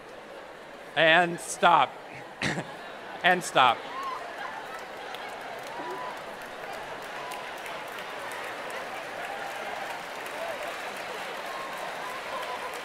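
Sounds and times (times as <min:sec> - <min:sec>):
faint crowd murmur: 0:00.0 - 0:12.8
speech: 0:01.0 - 0:03.9
large audience clapping: 0:04.6 - 0:12.8.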